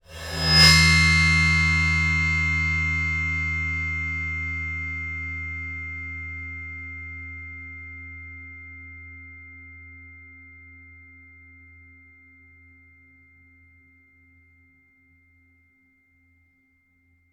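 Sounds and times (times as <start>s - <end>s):
bowed cymbal with highs, mids and lows: 0.0s - 10.2s.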